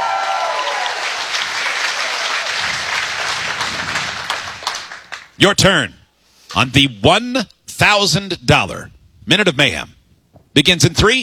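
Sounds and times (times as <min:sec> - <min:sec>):
audience scattered cheers: 0:00.0 - 0:05.1
crowd applauding: 0:00.0 - 0:05.4
speech: 0:05.4 - 0:10.0, 0:10.6 - 0:11.2.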